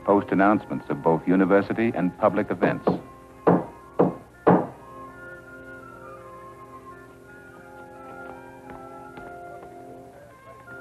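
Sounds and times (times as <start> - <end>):
speech: 0.1 - 3.1
hammer driving a nail into a wooden door: 2.9 - 4.8.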